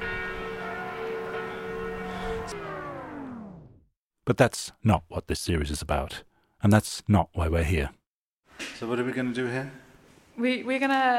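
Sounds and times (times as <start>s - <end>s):
church bells ringing over a city: 0.0s - 3.2s
speech: 2.5s - 2.7s, 4.3s - 8.0s, 8.6s - 9.8s, 10.4s - 11.1s.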